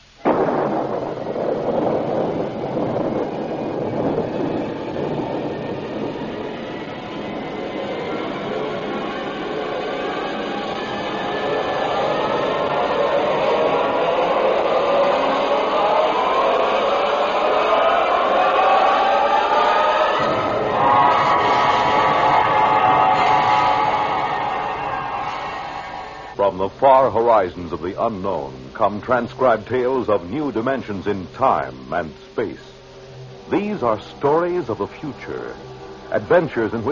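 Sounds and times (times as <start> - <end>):
rocket blast-off with firing engines roaring: 0.0 - 36.9
whining tones sweeping upward: 0.2 - 26.4
speech: 26.6 - 32.7, 33.5 - 36.9.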